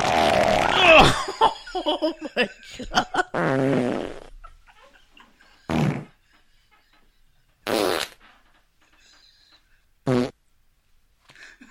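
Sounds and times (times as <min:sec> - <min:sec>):
fart sound effect played from a video: 0:00.0 - 0:01.2, 0:03.3 - 0:04.4, 0:05.7 - 0:06.2, 0:07.6 - 0:08.2, 0:10.0 - 0:10.4
laughter: 0:00.7 - 0:03.4
speech: 0:01.8 - 0:04.0.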